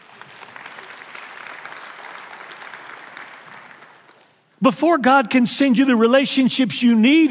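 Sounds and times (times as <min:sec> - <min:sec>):
crowd clapping: 0:00.0 - 0:04.5
speech: 0:04.6 - 0:07.3.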